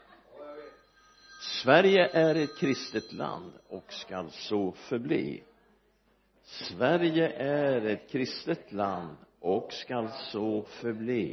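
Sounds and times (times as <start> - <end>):
mobile phone ringing with a steady electronic tone: 0.5 - 4.2
speech: 1.6 - 5.5, 6.5 - 11.3.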